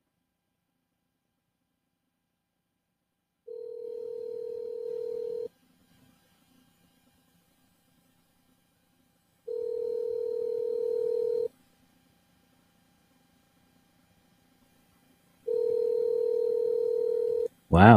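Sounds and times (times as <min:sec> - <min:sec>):
telephone ringback tone from an outgoing call: 0:03.5 - 0:05.5, 0:09.5 - 0:11.5, 0:15.5 - 0:17.5
speech: 0:17.8 - 0:17.9.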